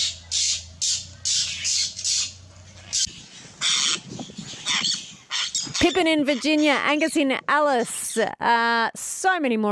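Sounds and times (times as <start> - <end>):
low rumble: 0.0 - 7.5
apostlebird calling with harsh rasping squawks: 0.0 - 8.3
speech: 5.8 - 9.7.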